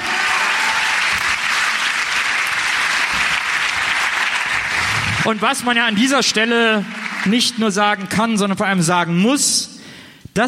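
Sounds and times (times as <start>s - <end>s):
live audience applause: 0.0s - 7.8s
speech: 5.3s - 9.8s.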